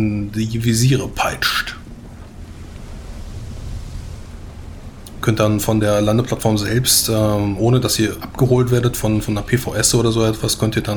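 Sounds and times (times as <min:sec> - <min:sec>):
speech: 0:00.0 - 0:01.7, 0:05.2 - 0:10.9
gusting wind: 0:00.0 - 0:10.9
heavy ocean surf crashing in a storm: 0:01.0 - 0:08.1.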